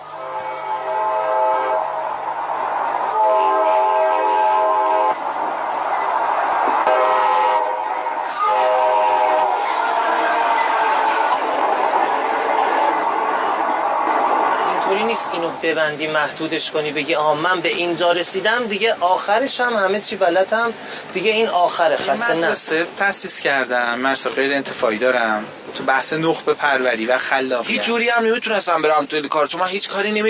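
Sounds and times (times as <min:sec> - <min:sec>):
train horn blasts: 0:00.0 - 0:02.0, 0:03.0 - 0:05.2, 0:06.8 - 0:11.4
train rumbling along the rails: 0:00.0 - 0:28.8
speech: 0:15.7 - 0:30.2.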